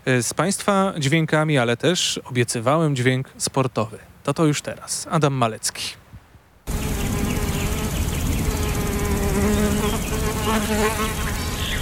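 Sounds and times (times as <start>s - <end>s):
speech: 0.1s - 6.0s, 9.4s - 11.4s
bees and flies buzzing in a quiet meadow: 6.6s - 11.8s.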